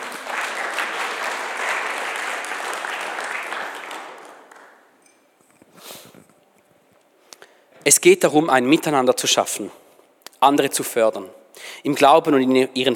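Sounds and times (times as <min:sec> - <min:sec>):
scattered claps: 0:00.0 - 0:04.8
audience applause: 0:00.0 - 0:04.9
speech: 0:08.0 - 0:09.8, 0:10.4 - 0:12.9.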